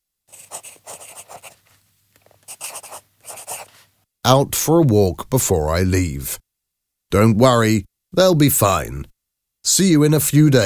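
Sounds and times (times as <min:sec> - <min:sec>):
pen scratching across a small piece of paper writing a note at a desk: 0:00.3 - 0:01.6, 0:02.4 - 0:03.8
speech: 0:04.3 - 0:06.4, 0:07.1 - 0:10.6.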